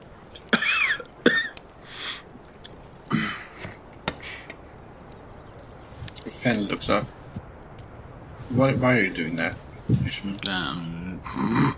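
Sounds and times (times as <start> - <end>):
sharp coughs: 0.5 - 1.6
quiet breathy sounds: 1.8 - 2.4, 3.0 - 4.8, 11.2 - 11.7
speech: 6.4 - 7.2, 8.6 - 11.7.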